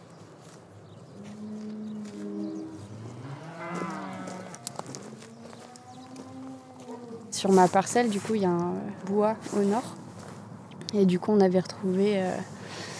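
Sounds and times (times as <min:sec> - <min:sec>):
cows mooing in a pasture: 0:01.2 - 0:07.6
speech: 0:07.4 - 0:10.0, 0:10.9 - 0:12.6.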